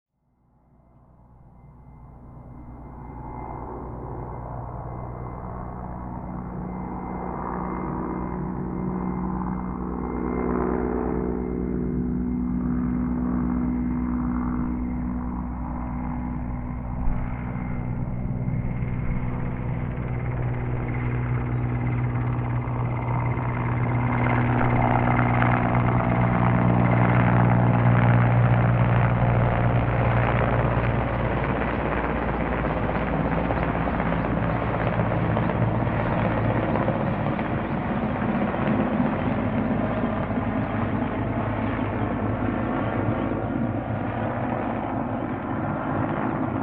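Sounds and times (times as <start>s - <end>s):
helicopter: 0.1s - 46.6s.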